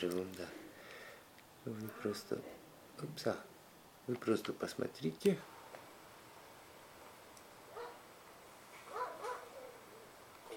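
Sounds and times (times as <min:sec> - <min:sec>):
speech: 0:00.0 - 0:00.6, 0:01.6 - 0:03.5, 0:04.1 - 0:05.6
steady hiss: 0:00.0 - 0:10.5
dog barking: 0:07.7 - 0:08.0, 0:08.9 - 0:10.5.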